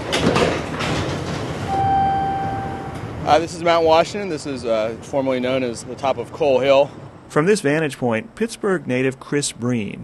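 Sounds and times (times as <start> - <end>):
incline railway car rumbling and clattering on a steep hillside in Pittsburgh: 0.0 - 1.7, 2.4 - 6.4
speech: 3.3 - 10.0.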